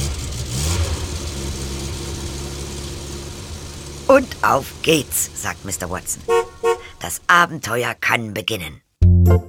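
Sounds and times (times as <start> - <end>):
car engine starting and idling: 0.0 - 7.4
speech: 4.1 - 9.4.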